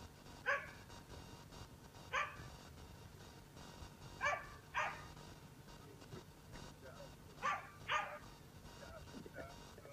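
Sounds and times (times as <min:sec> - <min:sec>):
dog barking: 0:00.5 - 0:00.8, 0:02.1 - 0:02.4, 0:04.2 - 0:05.1, 0:07.4 - 0:08.2.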